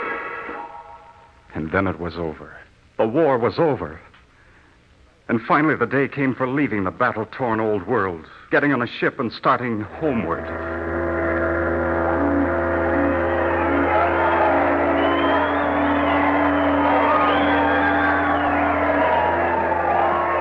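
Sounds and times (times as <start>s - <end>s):
speech: 1.5s - 4.1s, 5.3s - 10.7s
large crowd cheering and shouting in celebration: 10.3s - 20.3s.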